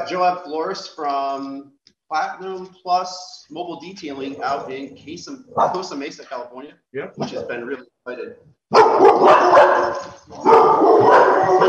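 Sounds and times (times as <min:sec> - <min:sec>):
speech: 0:00.0 - 0:11.6
dog barking: 0:08.7 - 0:11.6.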